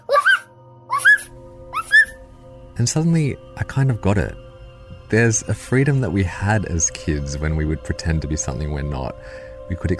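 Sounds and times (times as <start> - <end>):
boy's voice imitating a dog barking: 0.0 - 2.2
speech: 2.8 - 4.4, 5.1 - 9.9.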